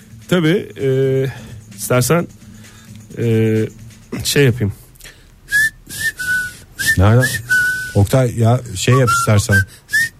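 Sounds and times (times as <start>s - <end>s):
speech: 0.3s - 2.4s, 3.2s - 4.8s, 7.0s - 9.9s
person whistling a short bright tune: 5.5s - 8.0s, 8.9s - 10.1s.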